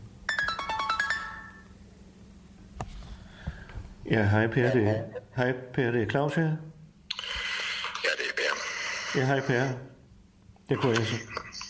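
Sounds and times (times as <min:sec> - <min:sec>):
low steady hum: 0:00.0 - 0:11.6
phone ringtone for an incoming call: 0:00.3 - 0:01.7
speech: 0:04.1 - 0:06.7, 0:09.2 - 0:10.0, 0:10.7 - 0:11.5.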